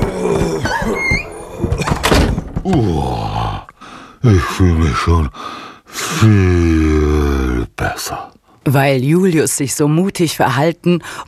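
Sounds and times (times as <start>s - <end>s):
door creaking open with squeaky hinge: 0.0s - 3.0s
dull knocks and rattles: 0.0s - 3.0s
speech: 4.2s - 11.2s.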